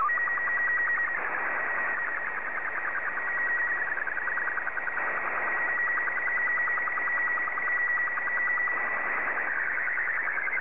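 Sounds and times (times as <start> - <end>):
Robot 12 black and white slow-scan television signal: 0.0 - 10.5.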